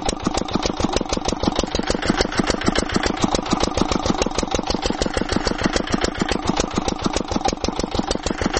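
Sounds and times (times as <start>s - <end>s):
well-drilling rig engine chugging in a house yard: 0.0s - 8.5s.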